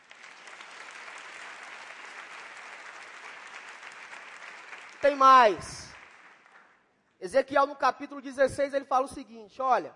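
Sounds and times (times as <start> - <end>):
crowd applause: 0.0 - 6.8
speech: 5.0 - 5.8, 7.2 - 9.9.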